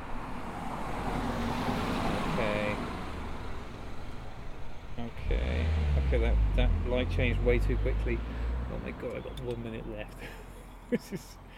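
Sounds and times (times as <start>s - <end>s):
roadway traffic rumble: 0.0s - 11.5s
vehicle passing with engine and tyre noise: 0.2s - 9.1s
speech: 6.2s - 11.5s.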